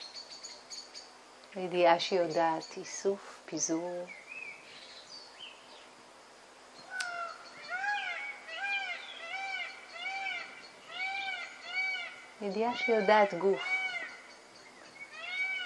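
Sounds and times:
speech: 0:01.5 - 0:04.2, 0:12.4 - 0:13.8
large bird giving loud wailing meow-like calls: 0:06.9 - 0:15.6.

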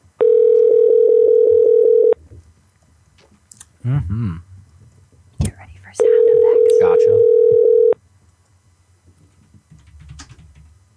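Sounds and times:
outgoing phone call ringing tone: 0:00.2 - 0:02.2, 0:06.0 - 0:08.0
speech: 0:03.9 - 0:04.5.

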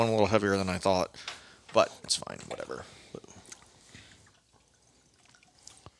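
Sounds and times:
speech: 0:00.0 - 0:03.3
whiskey pouring from a bottle: 0:02.4 - 0:05.9.

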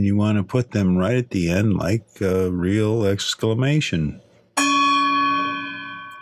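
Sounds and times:
speech: 0:00.0 - 0:04.2
gong struck and ringing: 0:04.6 - 0:06.1.

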